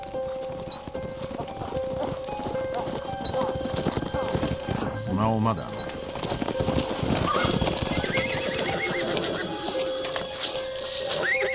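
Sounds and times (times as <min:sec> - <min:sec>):
riding horse hooves clip-clopping: 0:00.0 - 0:11.5
speech: 0:05.2 - 0:05.8
riding horse neighing in high wavering whinnies: 0:06.7 - 0:10.2, 0:11.0 - 0:11.5.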